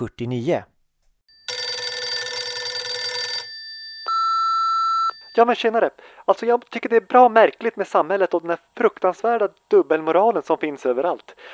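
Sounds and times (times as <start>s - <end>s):
speech: 0.0s - 0.7s, 5.4s - 11.5s
telephone bell ringing for an incoming call: 1.3s - 5.4s.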